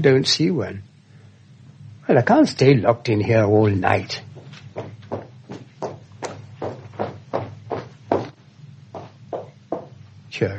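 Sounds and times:
speech: 0.0s - 0.9s, 2.1s - 5.0s, 10.4s - 10.5s
low steady hum: 0.0s - 10.5s
thudding footsteps at an uneven limping pace: 4.2s - 10.0s.

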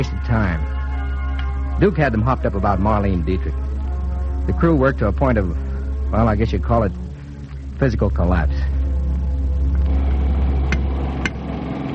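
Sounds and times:
speech: 0.0s - 0.7s, 1.8s - 3.7s, 4.5s - 7.0s, 7.8s - 8.7s
loud engine idling with a deep steady rumble: 1.9s - 11.9s.

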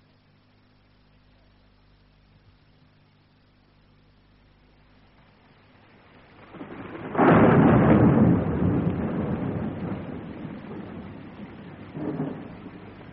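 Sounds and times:
steady rain: 0.0s - 13.1s
thunder rumbling during a night thunderstorm at a cemetery: 5.7s - 13.1s.

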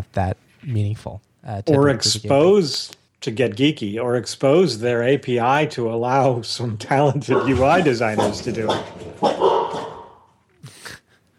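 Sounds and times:
speech: 0.1s - 9.5s
dog barking: 7.3s - 10.3s.

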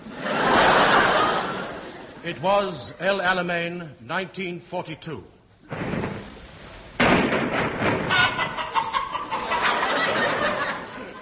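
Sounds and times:
laughter: 0.0s - 2.2s, 8.0s - 11.2s
speech: 2.2s - 5.8s
flock of chickens clucking and squawking: 8.1s - 10.3s.

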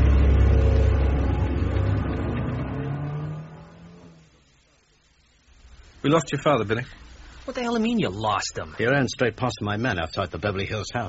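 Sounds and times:
car engine in Beverly Hills revving and pulling away: 0.0s - 4.5s
speech: 6.0s - 11.0s.

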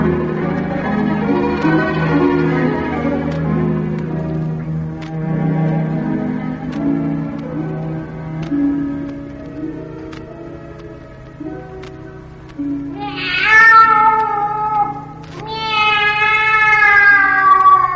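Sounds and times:
low humming drone: 0.0s - 17.9s
cat meowing: 12.9s - 17.9s.

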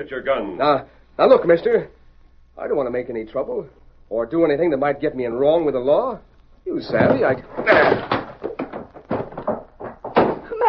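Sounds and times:
speech: 0.0s - 2.0s, 2.6s - 8.2s
knocks and thumps of a man throwing a chair: 6.8s - 10.6s
door banging shut as a man runs out: 6.9s - 10.5s.

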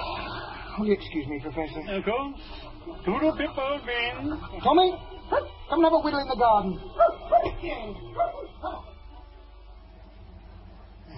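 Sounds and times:
speech: 0.8s - 8.9s
dog in a garden giving yelping barks: 5.0s - 5.7s, 6.9s - 7.6s, 8.2s - 8.9s.

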